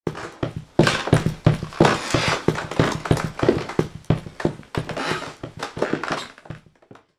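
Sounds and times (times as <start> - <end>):
footsteps with creaks: 0.0 - 7.1.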